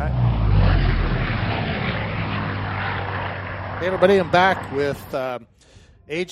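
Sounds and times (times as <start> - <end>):
small electric model airplane droning overhead at a festival in Arizona: 0.0 - 5.3
speech: 3.8 - 6.3.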